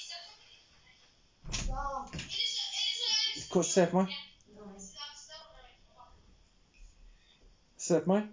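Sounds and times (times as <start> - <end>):
door swishing and creaking as a child plays with it: 1.4 - 2.3
speech: 3.6 - 4.3, 7.9 - 8.3.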